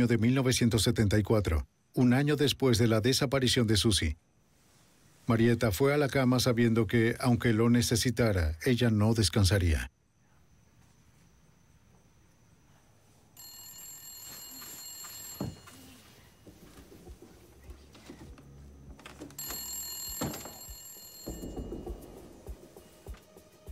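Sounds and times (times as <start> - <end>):
speech: 0.0 - 4.3, 5.3 - 10.0
telephone bell ringing: 13.4 - 16.6, 19.4 - 22.9.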